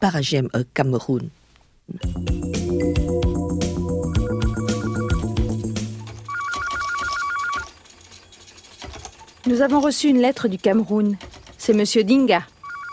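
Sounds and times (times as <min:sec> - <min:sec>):
speech: 0:00.0 - 0:03.0, 0:09.5 - 0:12.5
telephone ringing with electronic melody and warbling trill: 0:02.8 - 0:07.9, 0:12.5 - 0:12.9.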